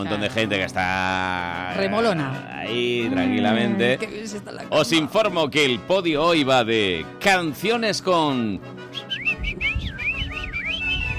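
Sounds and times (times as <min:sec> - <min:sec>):
speech: 0:00.0 - 0:09.1
person whistling a tune: 0:08.9 - 0:11.1.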